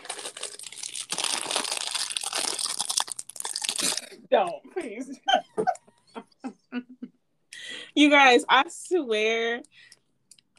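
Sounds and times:
snack cake wrapper crinkling while opened and snack eaten: 0.0 - 4.2
speech: 4.3 - 5.8, 8.0 - 9.7.

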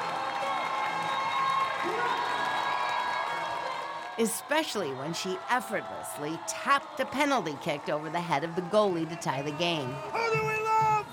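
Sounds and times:
scattered fan shouts and whoops: 0.0 - 4.1, 9.5 - 11.1
large crowd of soccer fans cheering and applauding at a stadium: 0.0 - 11.1
speech: 4.2 - 10.8.

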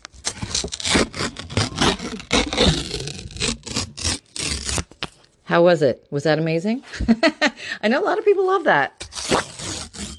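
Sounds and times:
paper being torn: 0.1 - 5.2, 9.0 - 10.1
speech: 5.5 - 9.0.

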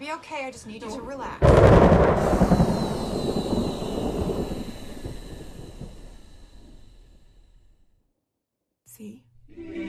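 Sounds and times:
speech: 0.0 - 3.6
thunder crack from lightning strike rolling into rumble: 1.4 - 7.7.

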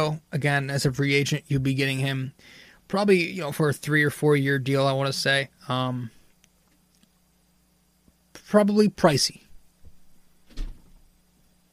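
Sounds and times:
speech: 0.0 - 6.2, 8.4 - 9.4
door slam from another room upstairs: 9.8 - 11.1.

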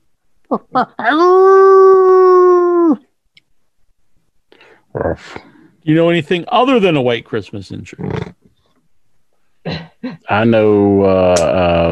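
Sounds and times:
speech: 0.5 - 2.0, 4.9 - 8.4, 10.3 - 11.8
person imitating a dog yelping and howling: 0.5 - 3.1.

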